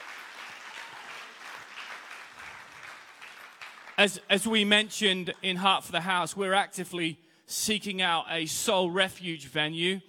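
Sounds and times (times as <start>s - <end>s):
audience applause for people involved with a charity foundation: 0.0s - 4.1s
speech: 4.0s - 10.0s.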